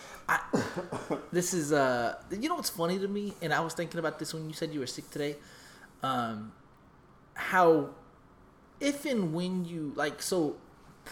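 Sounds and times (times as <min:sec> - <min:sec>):
person coughing: 0:00.3 - 0:01.4
speech: 0:00.5 - 0:06.6, 0:07.4 - 0:08.0, 0:08.8 - 0:11.1.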